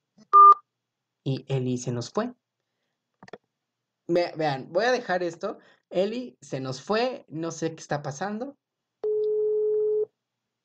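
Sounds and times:
speech: 0:01.2 - 0:02.4, 0:04.1 - 0:08.6
steady telephone tone after redialing a dropped call: 0:09.0 - 0:10.1.

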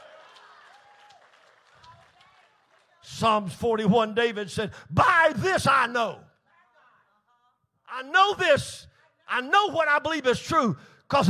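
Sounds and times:
audience clapping hands: 0:00.0 - 0:03.5
speech: 0:03.2 - 0:06.3, 0:08.0 - 0:11.2.

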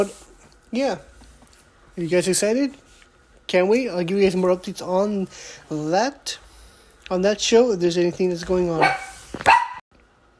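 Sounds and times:
speech: 0:00.0 - 0:01.1, 0:02.0 - 0:02.8, 0:03.5 - 0:06.4, 0:07.1 - 0:09.5
pet dog barking: 0:08.8 - 0:09.8.

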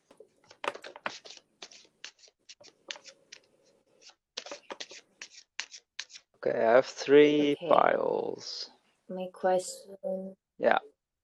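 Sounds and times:
deck of cards being shuffled: 0:00.4 - 0:06.3
speech: 0:06.4 - 0:10.9.

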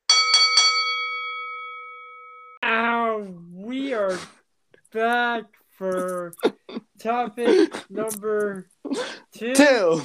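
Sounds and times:
bell ringing: 0:00.1 - 0:02.6
speech: 0:04.9 - 0:10.0.

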